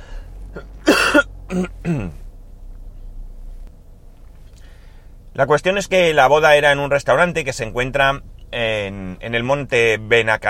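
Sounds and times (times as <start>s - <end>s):
quiet low hum: 0.0s - 10.4s
person coughing: 0.6s - 2.2s
throat clearing: 0.6s - 2.2s
speech: 1.5s - 2.2s, 5.4s - 10.4s.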